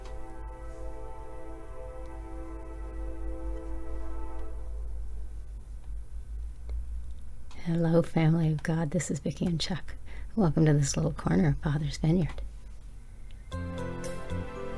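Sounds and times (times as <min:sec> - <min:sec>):
train horn multi-toned blast: 0:00.0 - 0:05.6
passing train rumbling: 0:00.0 - 0:06.6
speech: 0:07.7 - 0:12.4.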